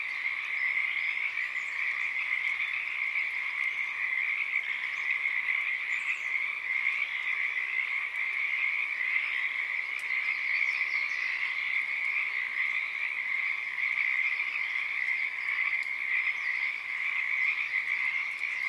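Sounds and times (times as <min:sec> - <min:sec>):
Pacific tree frog chorus in Portland Oregon USA: 0:00.0 - 0:18.6.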